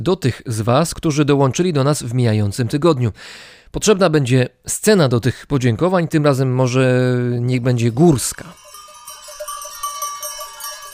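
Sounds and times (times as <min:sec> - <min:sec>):
speech: 0:00.0 - 0:08.6
many small sheep bells jingling in a mountain setting: 0:07.5 - 0:10.9.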